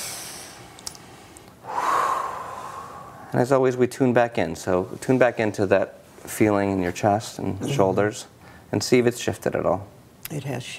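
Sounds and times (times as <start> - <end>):
person inhaling deeply through the nose during a tapping exercise: 0.0 - 3.3
speech: 3.3 - 10.7.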